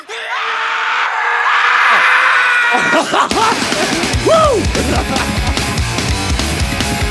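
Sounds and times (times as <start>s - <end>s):
howling scream: 0.1s - 3.2s, 3.8s - 5.1s
laughter: 0.4s - 7.0s
speech: 2.7s - 5.4s.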